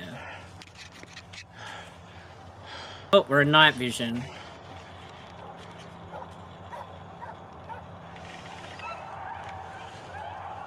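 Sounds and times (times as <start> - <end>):
dense steady noise: 0.0 - 10.6
speech: 3.1 - 4.4
dog barking and whimpering: 6.1 - 7.9.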